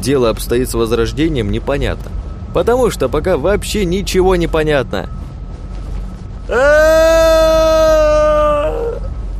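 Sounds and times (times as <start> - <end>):
speech: 0.0 - 5.2, 6.5 - 7.9
person screaming while falling toward the ground: 6.5 - 9.1.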